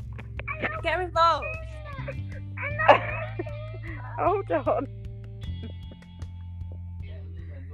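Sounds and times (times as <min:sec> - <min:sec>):
steady low hum: 0:00.0 - 0:07.7
laughter: 0:00.2 - 0:04.8
speech: 0:00.6 - 0:03.5, 0:04.2 - 0:05.0
toddler whimpering: 0:01.4 - 0:04.3.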